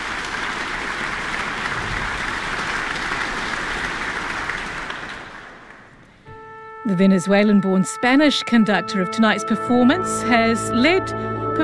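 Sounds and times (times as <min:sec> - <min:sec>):
large concert audience applause in a hall: 0:00.0 - 0:06.2
speech: 0:06.9 - 0:11.3.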